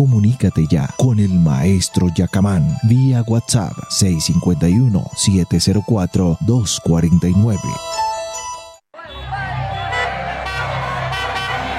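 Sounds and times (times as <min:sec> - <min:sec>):
speech: 0:00.0 - 0:08.1
car horns tooting: 0:09.0 - 0:11.7
dense evening road traffic roar: 0:09.0 - 0:11.7.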